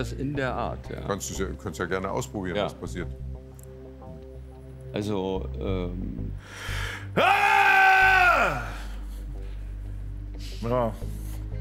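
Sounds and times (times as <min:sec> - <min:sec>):
speech: 0:00.0 - 0:03.3, 0:04.9 - 0:07.8, 0:08.4 - 0:08.8, 0:10.6 - 0:11.2
man roaring loudly: 0:07.2 - 0:08.8.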